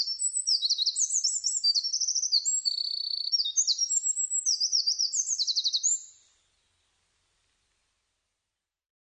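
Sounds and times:
Eurasian wren singing: 0:00.0 - 0:06.2.

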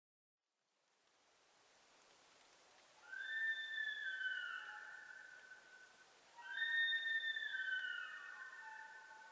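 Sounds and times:
Japanese sika deer giving drawn-out high whistle calls: 0:03.0 - 0:09.3.

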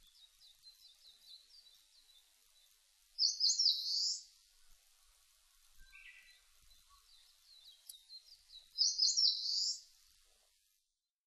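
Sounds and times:
Eastern crowned warbler song: 0:00.0 - 0:11.1.

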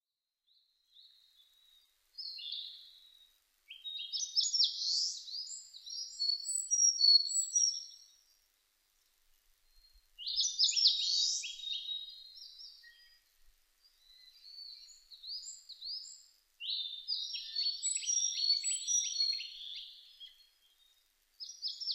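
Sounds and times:
Sakhalin leaf warbler: 0:00.6 - 0:08.3, 0:09.6 - 0:21.9.

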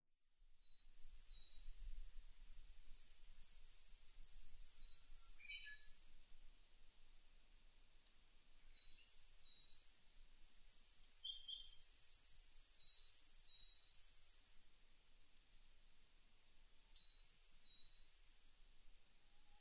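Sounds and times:
Sakhalin leaf warbler singing: 0:00.9 - 0:06.1, 0:08.5 - 0:14.3.

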